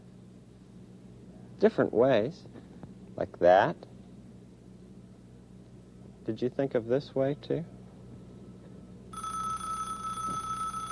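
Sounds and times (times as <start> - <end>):
speech: 1.6 - 2.6, 3.2 - 3.9, 6.3 - 7.8
telephone ringing with bright buzzy electronic tone: 9.1 - 10.9.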